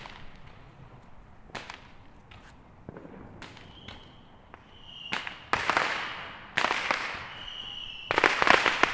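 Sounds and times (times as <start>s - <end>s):
fireworks banging and crackling: 0.0s - 8.9s.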